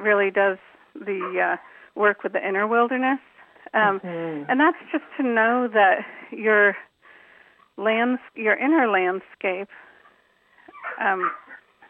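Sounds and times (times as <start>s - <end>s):
speech: 0.0s - 6.9s, 7.8s - 9.8s, 10.9s - 11.4s
puppy whining: 10.6s - 11.8s
faint puppy yelp: 10.7s - 11.7s.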